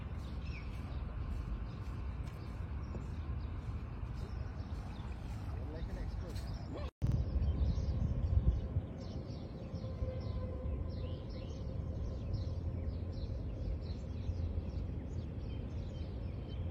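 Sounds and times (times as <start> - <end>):
scattered bird chirps: 0.0 - 16.7
steady low rumble of traffic: 0.0 - 16.7.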